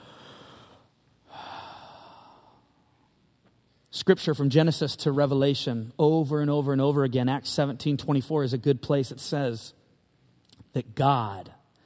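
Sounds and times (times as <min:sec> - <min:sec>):
deep breath drawn in: 0:00.0 - 0:02.7
speech: 0:03.9 - 0:09.8, 0:10.8 - 0:11.6.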